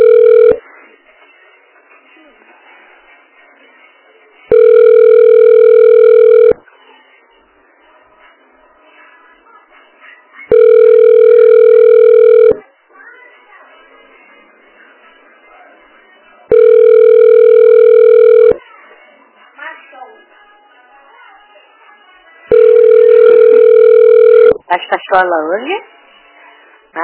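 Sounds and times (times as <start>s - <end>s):
phone line's ringback tone, unanswered: 0.0s - 0.6s, 4.5s - 6.6s, 10.5s - 12.6s, 16.5s - 18.6s, 22.5s - 24.6s
faint noise: 0.0s - 27.0s
speech: 24.9s - 25.9s.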